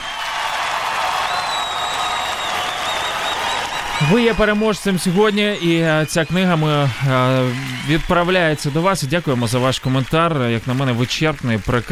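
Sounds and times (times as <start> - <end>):
crowd applause: 0.0 - 11.8
faint high whistle-like tone: 1.3 - 4.8
speech: 4.0 - 11.8.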